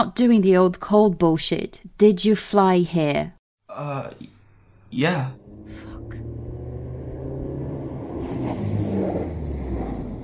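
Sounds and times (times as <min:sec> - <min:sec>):
speech: 0:00.0 - 0:04.3, 0:04.9 - 0:05.9
car engine rumbling as the car pulls up: 0:04.2 - 0:10.2.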